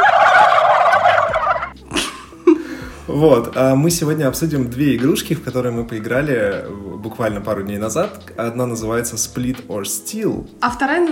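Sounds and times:
turkey gobbling: 0.0 - 1.8
speech: 3.1 - 11.1.

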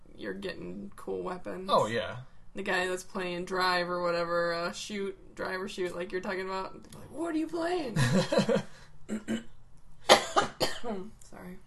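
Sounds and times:
speech: 0.3 - 9.5, 10.8 - 11.6
laughter: 8.0 - 8.7
harsh wet coughs: 10.1 - 11.0.

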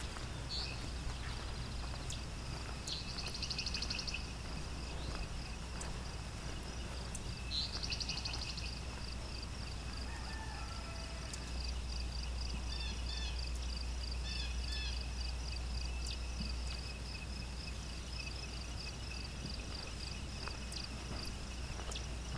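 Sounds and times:
continuous low rumble: 0.0 - 22.3
ovenbird singing in the woods: 0.1 - 8.9.

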